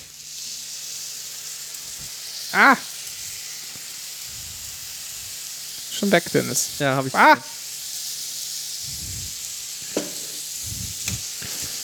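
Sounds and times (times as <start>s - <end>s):
pan deglazed with sherry sizzling: 0.0s - 11.8s
person exclaiming: 2.5s - 2.9s, 6.0s - 7.6s
speech: 2.5s - 2.9s, 6.0s - 7.6s.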